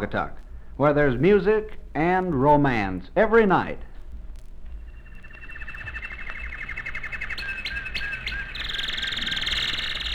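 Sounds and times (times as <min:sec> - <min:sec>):
speech: 0:00.0 - 0:03.9
steady hiss: 0:00.0 - 0:10.1
Michigan goldfinch singing: 0:04.8 - 0:10.1.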